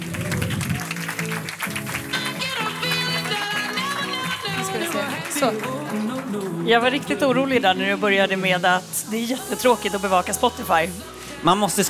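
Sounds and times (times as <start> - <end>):
crowd applauding: 0.0 - 7.7
upbeat music: 0.0 - 11.8
speech: 5.4 - 5.8, 6.7 - 11.8.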